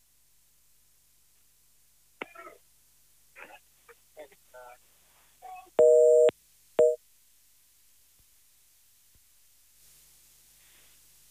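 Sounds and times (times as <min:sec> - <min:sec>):
telephone busy tone during phone calls: 0:05.8 - 0:07.0.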